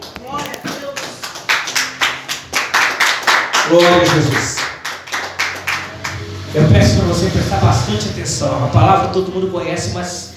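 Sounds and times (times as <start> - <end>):
audience at a church worship service clapping rhythmically in praise: 0.0 - 6.6
speech: 3.7 - 4.7, 6.5 - 10.3.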